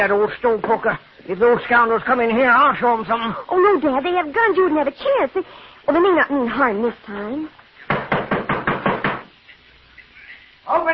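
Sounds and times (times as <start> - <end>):
speech: 0.0 - 7.6, 10.7 - 10.9
pounding on a wooden door: 7.9 - 9.3.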